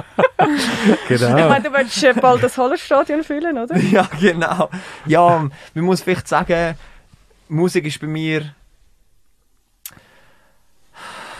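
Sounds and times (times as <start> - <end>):
laughter: 0.0 - 2.6, 3.7 - 5.6
speech: 0.0 - 6.9, 7.5 - 8.6
heavy breathing with sharp intake and long noisy exhale: 0.5 - 1.2, 4.7 - 5.8, 10.0 - 11.3.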